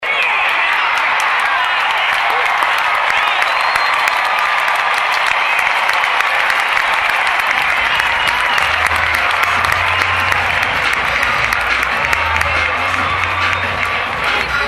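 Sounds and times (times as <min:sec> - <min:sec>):
big crowd cheering: 0:00.0 - 0:14.6.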